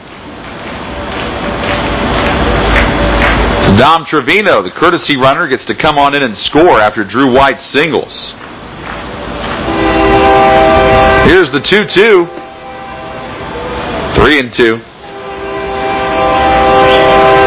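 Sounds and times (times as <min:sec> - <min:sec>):
train rumbling past: 0:00.0 - 0:17.4
speech: 0:03.8 - 0:08.4, 0:11.3 - 0:12.4, 0:14.2 - 0:14.9
train horn sounding long sustained blasts: 0:09.6 - 0:14.3, 0:15.0 - 0:17.4.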